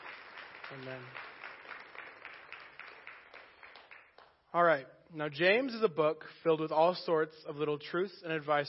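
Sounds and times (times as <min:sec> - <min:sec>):
audience applause: 0:00.0 - 0:04.3
speech: 0:00.7 - 0:01.3, 0:04.5 - 0:08.6.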